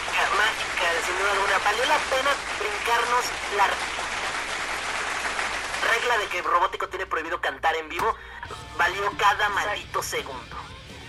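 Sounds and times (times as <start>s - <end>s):
crowd applause: 0.0s - 6.6s
speech: 1.1s - 4.2s, 6.0s - 10.7s.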